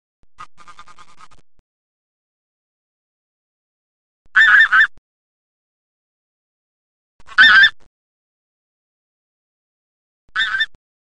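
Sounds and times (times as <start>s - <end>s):
bean goose: 0.4s - 1.4s, 4.3s - 5.0s, 7.2s - 7.9s, 10.3s - 10.8s.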